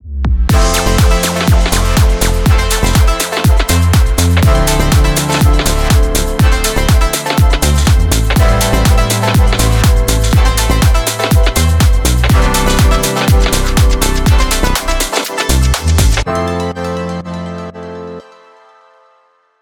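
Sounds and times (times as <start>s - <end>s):
fashion lifestyle house music: 0.5s - 18.2s.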